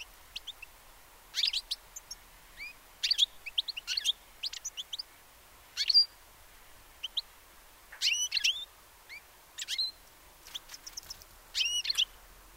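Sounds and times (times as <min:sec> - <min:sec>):
European goldfinch calls with sharp high chirps and twitters: 0:00.0 - 0:00.7, 0:01.3 - 0:05.1, 0:05.8 - 0:06.2, 0:07.0 - 0:07.3, 0:08.0 - 0:12.2.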